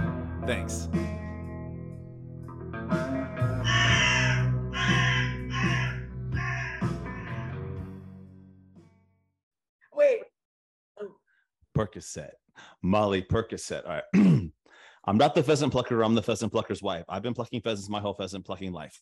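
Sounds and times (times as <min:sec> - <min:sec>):
speech: 0:00.5 - 0:01.0, 0:11.9 - 0:18.9
crow cawing: 0:03.4 - 0:07.7.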